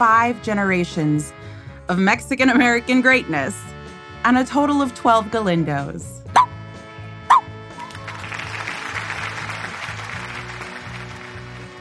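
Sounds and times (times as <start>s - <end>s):
speech: 0.0s - 6.2s
small shaggy white dog barking: 7.3s - 7.5s.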